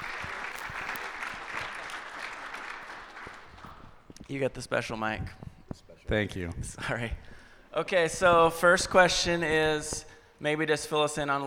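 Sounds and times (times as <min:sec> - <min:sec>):
crowd applauding: 0:00.0 - 0:04.2
speech: 0:04.3 - 0:11.4.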